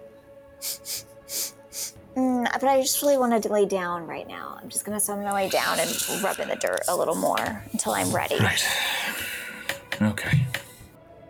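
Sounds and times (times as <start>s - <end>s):
speech: 0.6s - 1.4s, 2.4s - 9.4s
person imitating a dog sniffing a woman's footprints: 0.6s - 2.0s, 5.3s - 9.9s.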